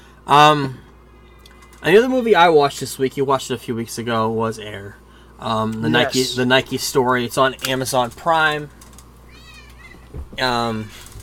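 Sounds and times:
speech: 0.3 - 0.8, 1.8 - 8.8, 10.4 - 11.1
cat meowing: 9.3 - 10.1
soft thump: 10.1 - 10.5.

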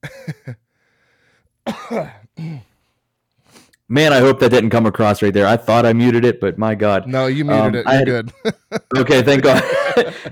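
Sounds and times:
man clearing throat: 0.0 - 0.6, 1.7 - 2.8, 9.5 - 10.3
speech: 1.9 - 2.6, 3.9 - 10.3
laughter: 7.5 - 10.3.

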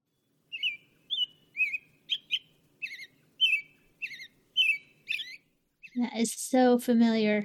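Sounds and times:
American robin calling in short bright warbling chirps: 0.1 - 6.3
speech: 6.0 - 7.4.

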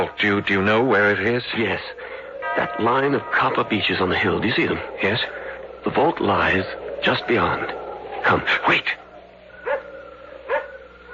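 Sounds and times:
speech: 0.0 - 9.0
low hum: 0.0 - 11.1
dog barking on the grounds: 9.6 - 11.1.

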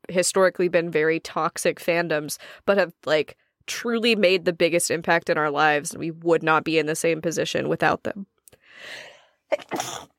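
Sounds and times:
speech: 0.1 - 10.1
sneeze: 9.6 - 10.1.

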